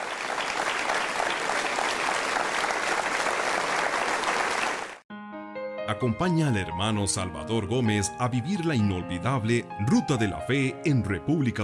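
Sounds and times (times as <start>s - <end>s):
church congregation applauding during a Mass: 0.0s - 5.0s
speech: 5.9s - 11.6s.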